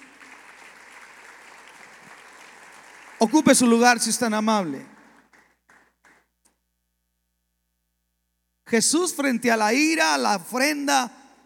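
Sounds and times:
large crowd applauding: 0.0 - 6.3
speech: 3.2 - 5.0, 8.7 - 11.2.

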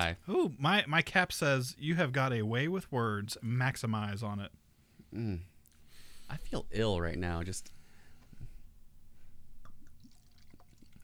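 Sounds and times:
speech: 0.0 - 5.5, 6.3 - 7.8
soft drips: 7.6 - 11.0
salmon soda being poured into a container: 9.6 - 11.0.

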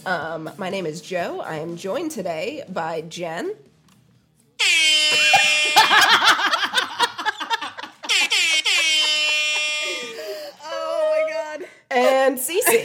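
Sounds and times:
speech: 0.0 - 3.7, 12.0 - 12.8
air horn sound effect blast: 4.6 - 6.8, 8.0 - 10.4
people laughing: 5.1 - 10.4.

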